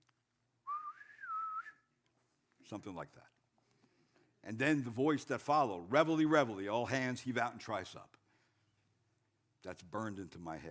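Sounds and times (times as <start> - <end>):
whistled imitation of a bosun's pipe call: 0.7 - 1.8
speech: 2.7 - 3.4, 4.4 - 8.2, 9.6 - 10.6.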